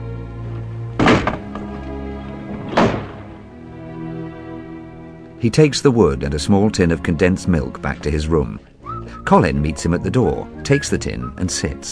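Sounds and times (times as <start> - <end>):
window shutters slamming shut: 1.0 - 3.5
speech: 5.4 - 11.9.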